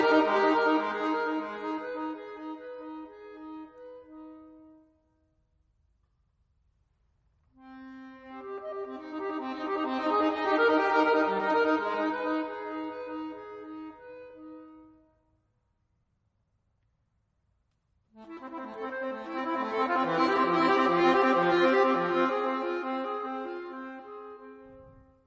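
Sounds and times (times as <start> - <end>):
solo accordion playing long sustained chords of a contemporary piece: 0.0 - 5.0, 7.6 - 15.1, 18.2 - 25.0.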